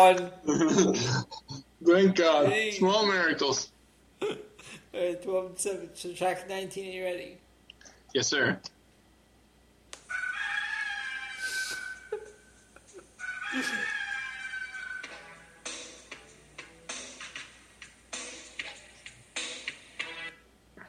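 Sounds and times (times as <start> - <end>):
speech: 0.0 - 7.4, 8.1 - 8.8, 13.5 - 14.0
rooster crowing: 10.1 - 15.6.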